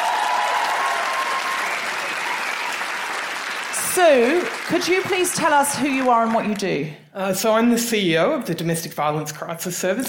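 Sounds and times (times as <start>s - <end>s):
audience round of applause: 0.0s - 6.8s
speech: 4.0s - 10.0s.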